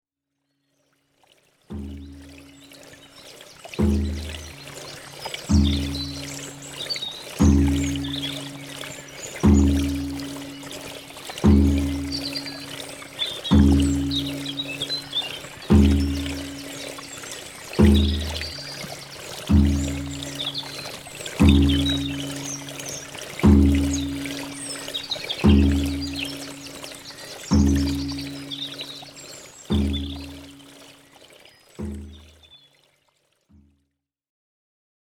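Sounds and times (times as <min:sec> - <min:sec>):
shamanic music: 0:03.7 - 0:30.9.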